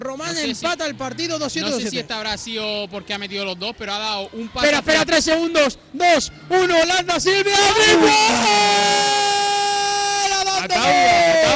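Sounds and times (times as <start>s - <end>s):
speech: 0.0s - 9.1s, 10.6s - 11.5s
crowd noise in a basketball arena: 0.0s - 11.5s
excited voices in a basketball arena: 7.2s - 11.5s
end-of-period buzzer horn blaring in a basketball arena: 7.6s - 9.7s.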